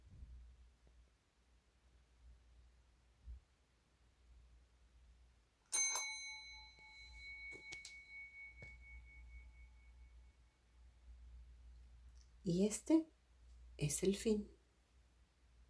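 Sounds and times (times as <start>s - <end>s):
single bell struck with bright metallic ring: 5.7s - 10.2s
speech: 12.4s - 13.1s, 13.8s - 14.6s.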